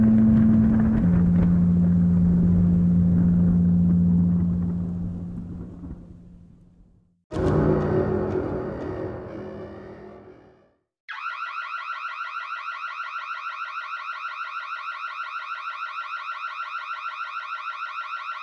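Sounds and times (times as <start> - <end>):
low rumbling noise: 0.0 - 10.6.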